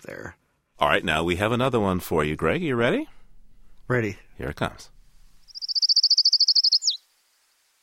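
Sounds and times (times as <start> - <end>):
speech: 0.0 - 3.2, 3.9 - 5.0
warbler singing a rapid high trill with a downward flourish: 5.4 - 7.0.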